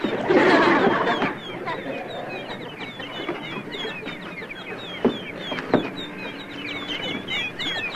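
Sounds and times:
laughter: 0:00.0 - 0:04.4
many baby birds chirping and peeping: 0:00.0 - 0:07.9
sharp knocks: 0:05.0 - 0:06.0.

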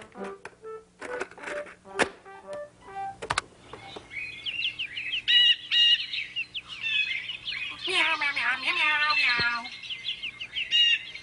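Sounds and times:
bird chirps and tweets played from a tape player: 0:03.7 - 0:11.2.

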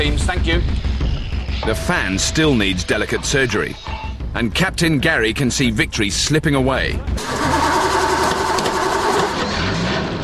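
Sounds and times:
speech: 0:00.0 - 0:00.9, 0:01.6 - 0:07.7
small engine driving a conveyor axle, starting and running: 0:07.2 - 0:09.8.

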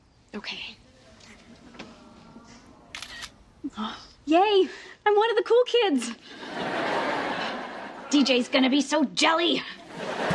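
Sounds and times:
speech: 0:00.3 - 0:00.8, 0:03.7 - 0:06.4, 0:08.1 - 0:09.8
camera shutter click taking a selfie: 0:03.0 - 0:03.4
laughter: 0:06.3 - 0:08.5, 0:09.7 - 0:10.3.

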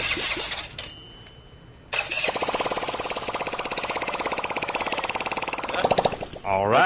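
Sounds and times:
small engine sputtering, cranking and running: 0:02.0 - 0:06.4
speech: 0:06.5 - 0:06.8.

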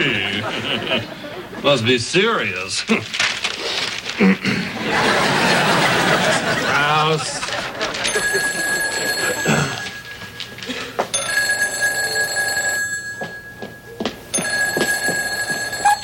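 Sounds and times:
laughter: 0:00.0 - 0:01.8, 0:04.2 - 0:11.1
speech: 0:00.7 - 0:03.4, 0:04.2 - 0:05.7, 0:07.1 - 0:08.6
telephone ringing: 0:05.0 - 0:16.0.

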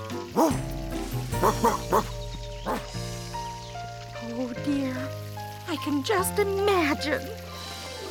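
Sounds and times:
big red dog barking: 0:00.3 - 0:02.9
speech: 0:00.4 - 0:00.8, 0:01.4 - 0:02.2, 0:04.4 - 0:07.4.

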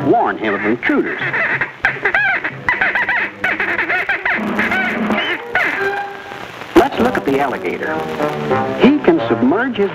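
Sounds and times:
speech: 0:00.1 - 0:01.5, 0:07.4 - 0:09.9
tick bird squawking harsh honking calls: 0:00.2 - 0:06.5.

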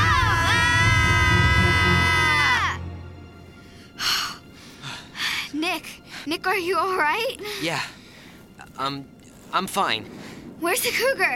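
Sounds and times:
people yelling loudly: 0:00.0 - 0:02.8
speech: 0:06.3 - 0:08.0, 0:08.8 - 0:11.3.

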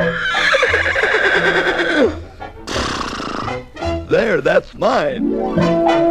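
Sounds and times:
horse whinnying: 0:00.0 - 0:03.6
speech: 0:04.4 - 0:06.0.

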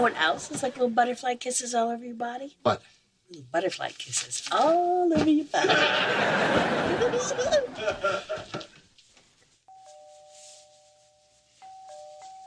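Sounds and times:
speech: 0:00.0 - 0:08.6
laughter: 0:05.6 - 0:08.8
electronic doorbell ringing with a two-tone chime: 0:09.7 - 0:12.4.

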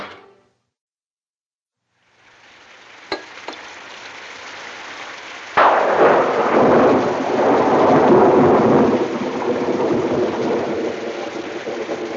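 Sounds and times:
heavy rain: 0:01.9 - 0:12.1
thunder crack: 0:05.5 - 0:12.1.

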